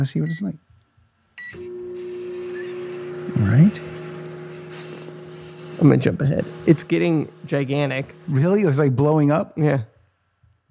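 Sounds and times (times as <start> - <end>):
speech: 0.0 - 0.7, 3.5 - 4.0, 5.8 - 9.9
microwave oven running with electrical hum: 1.4 - 9.5.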